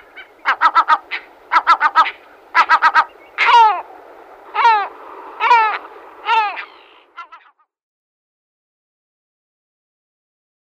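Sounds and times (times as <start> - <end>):
lesser black-backed gull mewing calls: 0.0 - 7.6.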